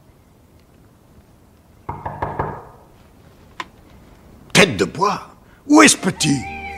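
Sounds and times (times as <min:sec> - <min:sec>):
knocking on a wooden door: 0:01.9 - 0:02.9
speech: 0:04.6 - 0:06.6.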